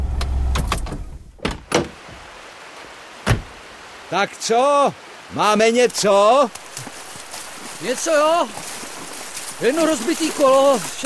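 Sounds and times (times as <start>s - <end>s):
car engine rumbling as it pulls up at the water's edge: 0.0s - 1.4s
car doors opening and shutting: 0.0s - 2.2s, 3.2s - 3.6s
quiet outdoor ambience: 0.0s - 11.0s
speech: 4.1s - 6.9s, 7.8s - 8.6s, 9.6s - 11.0s.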